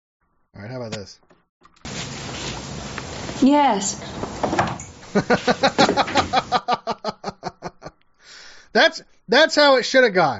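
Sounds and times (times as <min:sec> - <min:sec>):
speech: 0:00.6 - 0:01.4, 0:03.4 - 0:06.9, 0:08.7 - 0:10.3
speakeasy door's small slot sliding with ratcheting rattle: 0:04.2 - 0:05.0, 0:05.7 - 0:06.4
laughter: 0:05.0 - 0:08.0.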